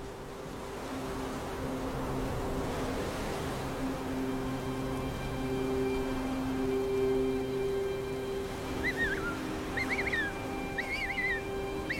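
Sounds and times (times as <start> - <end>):
wind-like noise: 0.0 - 11.9
penguin chick crying calls on an island: 8.8 - 11.9.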